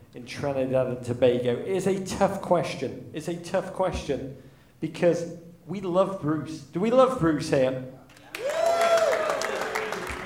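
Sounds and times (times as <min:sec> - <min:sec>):
speech: 0:00.2 - 0:08.0
single audience member clapping: 0:08.1 - 0:10.2.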